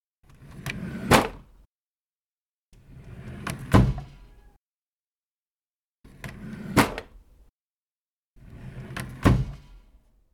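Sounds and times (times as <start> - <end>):
drawer opening and closing: 0.3 - 1.5, 2.8 - 4.6, 6.1 - 7.3, 8.4 - 10.0.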